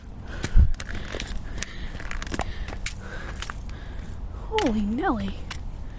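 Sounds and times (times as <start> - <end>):
footsteps crunching on slippery ice and snow: 0.0 - 5.6
ice cracking: 0.4 - 3.8
speech: 4.7 - 5.4.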